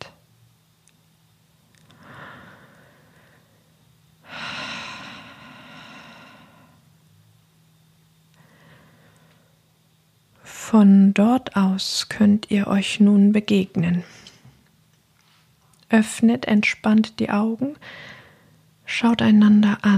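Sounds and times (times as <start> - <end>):
faint steady low hum: 0.0 - 19.9
slow deep breaths: 1.8 - 6.8, 8.4 - 9.6
speech: 10.7 - 14.2, 15.9 - 18.2, 18.9 - 19.9.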